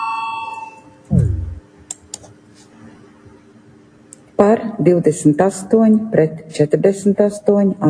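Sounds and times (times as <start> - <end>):
parliament voting electronic bell ringing: 0.0 - 0.9
dull low thump: 1.1 - 1.8
speech: 4.4 - 7.8.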